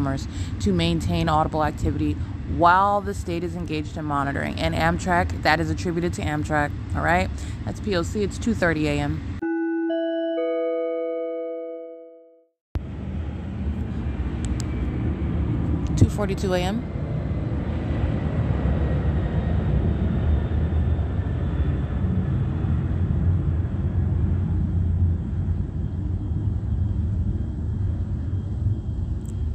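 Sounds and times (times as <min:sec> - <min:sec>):
airplane roaring overhead: 0:00.0 - 0:10.5, 0:12.8 - 0:29.5
speech: 0:00.1 - 0:09.4, 0:16.2 - 0:17.0
short electronic chime: 0:09.4 - 0:12.4.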